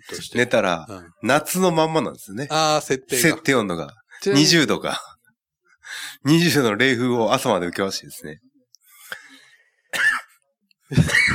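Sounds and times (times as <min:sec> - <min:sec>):
speech: 0:00.0 - 0:05.1, 0:05.9 - 0:08.5, 0:10.9 - 0:11.3
person coughing: 0:09.9 - 0:11.3.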